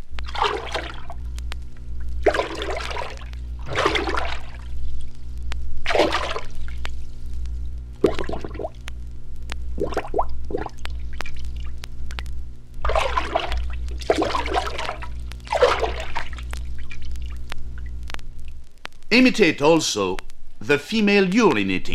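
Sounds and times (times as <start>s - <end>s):
steady low hum: 0.0s - 21.9s
paddle swishing in a lake imitating a female moose walking: 0.3s - 1.2s, 2.2s - 4.8s, 12.9s - 16.4s
speech: 19.2s - 21.9s.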